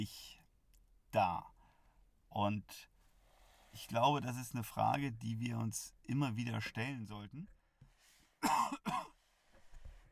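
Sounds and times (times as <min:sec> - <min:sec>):
speech: 0:00.0 - 0:00.3, 0:01.1 - 0:01.5, 0:02.3 - 0:02.9, 0:03.8 - 0:07.6, 0:08.4 - 0:09.2
quiet breathing: 0:01.5 - 0:04.1, 0:07.7 - 0:08.4, 0:09.1 - 0:10.0
person coughing: 0:08.4 - 0:09.2.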